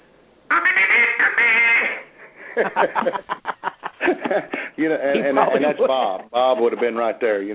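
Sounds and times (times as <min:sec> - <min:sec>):
duck call blown, reedy quacking: 0:00.5 - 0:02.1
laughter: 0:02.4 - 0:07.1
speech: 0:02.6 - 0:07.5.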